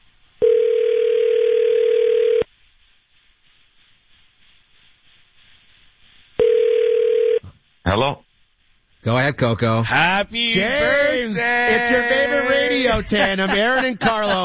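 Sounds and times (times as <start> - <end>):
outgoing telephone call electronic ringback tone: 0.4 - 2.4, 6.4 - 7.4
speech: 7.9 - 8.3, 9.0 - 14.4
laughter: 10.6 - 14.4.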